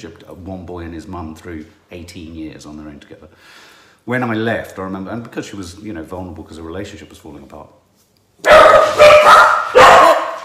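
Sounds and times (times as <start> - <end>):
speech: 0.0 - 7.8
dogs barking: 8.4 - 10.4.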